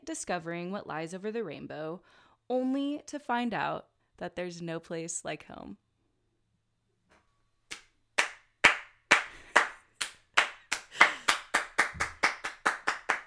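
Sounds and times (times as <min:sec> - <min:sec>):
speech: 0:00.1 - 0:05.8
single person clapping: 0:07.7 - 0:13.2.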